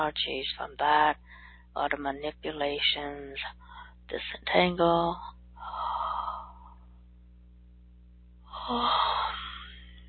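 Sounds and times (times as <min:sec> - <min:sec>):
speech: 0:00.0 - 0:06.0, 0:08.7 - 0:09.4
breathy yawn with low voiced groan: 0:08.6 - 0:09.8.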